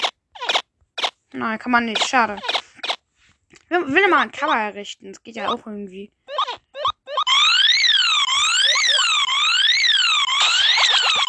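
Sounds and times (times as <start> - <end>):
speech: 1.3 - 2.6, 3.7 - 6.2
video game electronic alarm wailing: 6.3 - 11.2.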